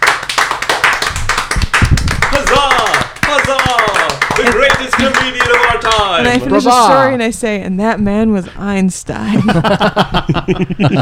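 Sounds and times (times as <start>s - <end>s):
small group clapping in a brisk burst of applause: 0.0s - 7.0s
speech: 5.0s - 11.0s
laughter: 9.2s - 11.0s.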